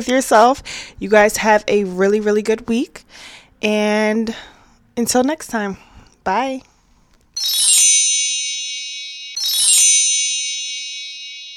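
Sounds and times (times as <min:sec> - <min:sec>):
speech: 0:00.0 - 0:06.7, 0:07.4 - 0:07.6
bright jingly metallic bell chimes: 0:07.4 - 0:11.5.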